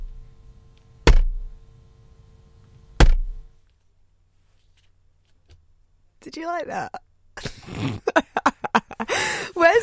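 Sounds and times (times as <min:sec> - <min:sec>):
pak choi slammed against a desk: 0:01.1 - 0:01.5, 0:03.0 - 0:03.4
speech: 0:06.3 - 0:07.1, 0:07.7 - 0:08.1, 0:09.6 - 0:09.8.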